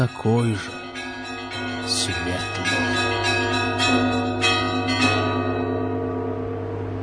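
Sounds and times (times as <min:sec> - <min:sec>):
speech: 0:00.0 - 0:00.8, 0:01.8 - 0:03.2, 0:03.9 - 0:04.2
bell ringing in a hotel corridor: 0:00.0 - 0:06.9.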